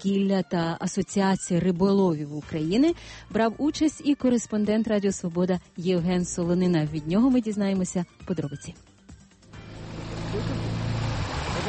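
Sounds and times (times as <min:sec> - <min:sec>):
speech: 0:00.0 - 0:08.9
motorboat engine droning on a river: 0:09.5 - 0:11.6.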